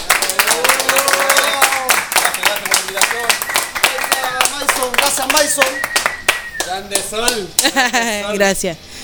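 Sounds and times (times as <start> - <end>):
excited voices and cheers: 0.0 - 6.8
group of people clapping: 0.0 - 7.8
speech: 5.4 - 5.8, 6.8 - 8.9
laughter: 7.4 - 8.4.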